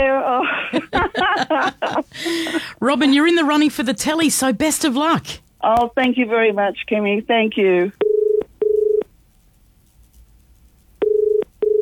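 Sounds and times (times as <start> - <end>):
laughter: 0.0 - 2.9
faint hiss: 0.0 - 11.7
speech: 1.5 - 8.0
telephone ringback tone of an outgoing call: 8.0 - 9.0, 11.0 - 11.7.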